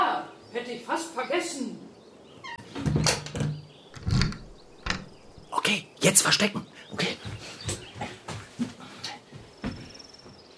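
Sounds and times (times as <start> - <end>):
speech: 0.7 - 1.9, 5.7 - 7.3
door swinging shut with a creaking scrape and dull thud: 2.6 - 5.5
lock being turned with a rattling clack: 3.0 - 5.5.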